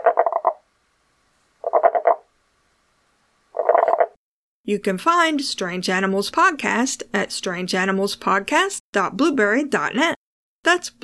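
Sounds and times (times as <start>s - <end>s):
tomato frog pulsed croaking: 0.0s - 0.6s, 1.6s - 2.2s, 3.6s - 4.2s
speech: 4.7s - 11.0s.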